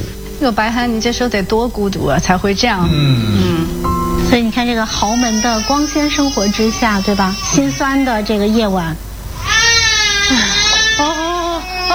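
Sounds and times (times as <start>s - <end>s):
speech: 0.4s - 9.1s, 10.3s - 11.2s
hungry baby crying: 2.7s - 11.9s.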